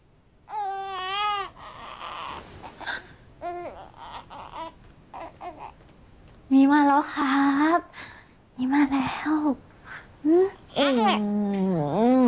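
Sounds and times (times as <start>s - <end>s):
baby crying after waking up: 0.5s - 5.8s
speech: 6.5s - 7.9s, 8.6s - 12.0s.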